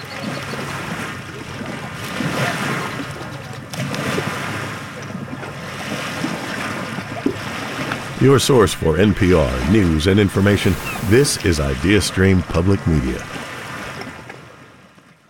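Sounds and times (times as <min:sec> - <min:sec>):
ocean waves lapping at a beach: 0:00.0 - 0:15.2
speech: 0:08.2 - 0:13.4
light breeze buffeting the microphone: 0:09.2 - 0:12.4.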